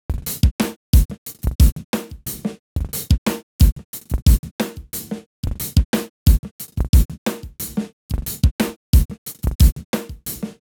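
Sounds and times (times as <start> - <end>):
drum loop groove at 90: 0.1 - 10.6.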